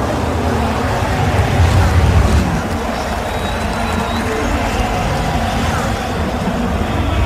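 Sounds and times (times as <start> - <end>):
large crowd cheering from race circuit grandstands: 0.0 - 7.2
low rumble possibly of passing engines: 0.4 - 4.0.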